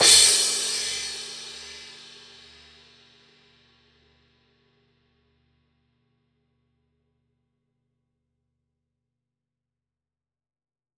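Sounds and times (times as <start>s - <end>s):
reversed cymbal: 0.0s - 2.7s.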